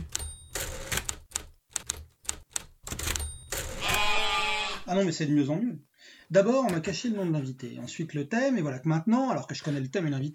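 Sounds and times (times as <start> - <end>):
typewriter clacks: 0.0 - 3.8
goat-like bleats: 3.8 - 4.9
sheep cry: 3.8 - 4.9
speech: 4.9 - 10.3.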